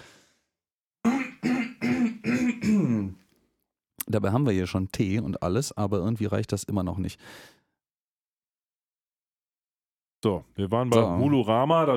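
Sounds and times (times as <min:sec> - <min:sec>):
person clearing throat with rough voiced rasps: 0:01.0 - 0:03.2
speech: 0:04.1 - 0:07.6, 0:10.2 - 0:11.9.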